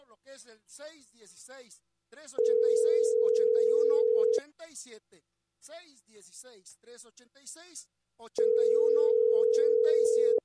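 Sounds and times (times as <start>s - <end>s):
speech: 0.1s - 10.4s
telephone tone on a call that fails to connect: 2.4s - 4.4s, 8.4s - 10.4s.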